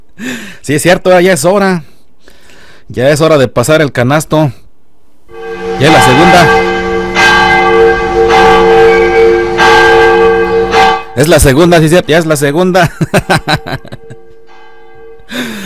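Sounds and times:
speech: 0.2 - 1.9, 2.9 - 4.6, 5.8 - 6.7, 11.2 - 14.1
church bell ringing from bell tower: 5.3 - 11.8, 13.4 - 15.6
laughter: 12.8 - 14.2.

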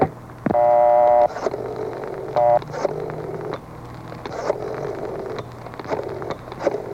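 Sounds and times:
steady hum: 0.0 - 6.9
sustained electronic telephone dialing tone: 0.5 - 1.5, 2.2 - 3.6.

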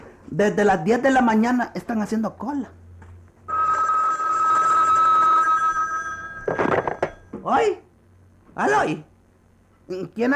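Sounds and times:
speech: 0.3 - 2.8, 7.5 - 7.8, 8.6 - 9.1, 9.9 - 10.3
telephone bell ringing: 3.5 - 7.3
burst of noise like the receiver being picked up: 6.3 - 7.4.

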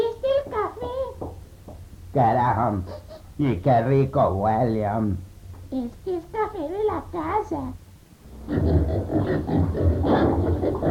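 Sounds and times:
speech: 2.2 - 7.8, 8.5 - 10.9
pigs grunting and snorting: 8.4 - 10.9.

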